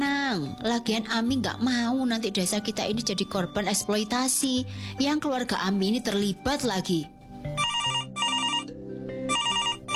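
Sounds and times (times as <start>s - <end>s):
speech: 0.4s - 7.2s
mobile phone ringing with a bright electronic ringtone: 7.5s - 9.9s.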